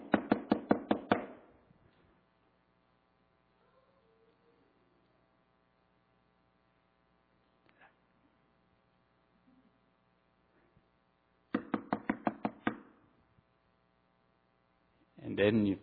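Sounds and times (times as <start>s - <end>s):
low steady hum: 0.0s - 15.8s
loud sharp knocks on a door: 11.5s - 12.8s
speech: 15.4s - 15.8s.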